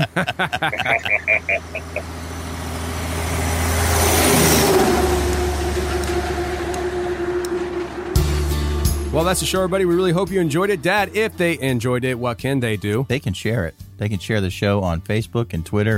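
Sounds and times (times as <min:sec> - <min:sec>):
laughter: 0:00.0 - 0:02.0
speech: 0:00.1 - 0:02.5, 0:09.1 - 0:15.9
diesel truck engine put in gear and pulling away: 0:01.2 - 0:13.0.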